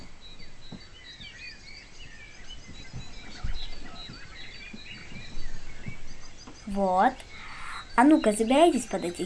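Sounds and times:
low rustles and thumps: 0.0s - 7.2s
nightingale chirping and trilling: 0.0s - 9.2s
speech: 6.7s - 7.3s, 8.0s - 9.2s.

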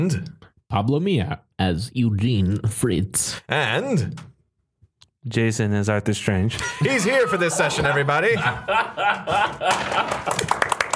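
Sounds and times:
speech: 0.0s - 4.3s, 5.2s - 10.7s
people chuckling: 6.5s - 10.9s
light polite golf clapping: 9.7s - 10.9s.

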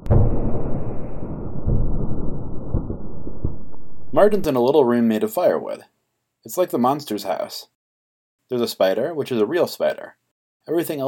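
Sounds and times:
distant explosions with deep rumbling booms: 0.0s - 4.5s
dull low-frequency roar: 0.0s - 4.5s
speech: 4.2s - 7.7s, 8.5s - 11.0s.

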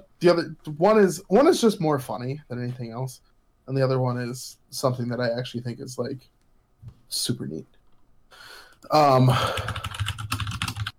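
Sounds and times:
speech: 0.2s - 9.9s
typing on a mechanical keyboard: 9.4s - 10.9s.

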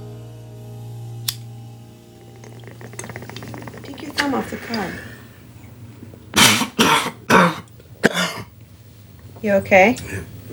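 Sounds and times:
speech: 4.2s - 5.1s, 9.4s - 10.5s
person coughing harshly: 6.4s - 8.5s.

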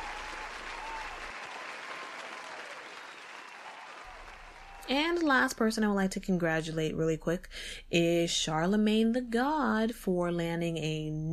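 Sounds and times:
crowd applause: 0.0s - 5.2s
speech: 4.9s - 11.3s.

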